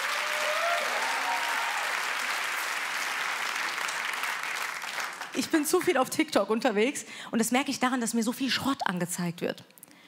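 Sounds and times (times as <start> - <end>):
faint vocal whoops and cheers: 0.0 - 2.3
audience applause: 0.0 - 5.4
speech: 5.4 - 9.8.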